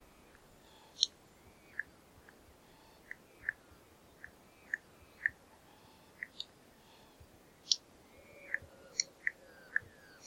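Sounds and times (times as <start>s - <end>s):
spotted nutcracker calling: 0.2s - 10.2s.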